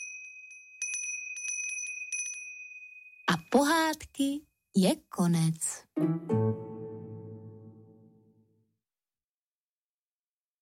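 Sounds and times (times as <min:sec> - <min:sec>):
small hand bell ringing: 0:00.0 - 0:03.3
speech: 0:03.5 - 0:06.7.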